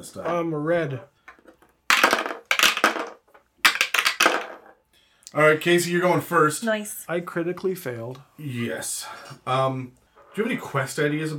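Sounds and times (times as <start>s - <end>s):
speech: 0.0s - 1.2s, 5.3s - 11.3s
dice rattling across a hard tabletop: 1.3s - 4.8s.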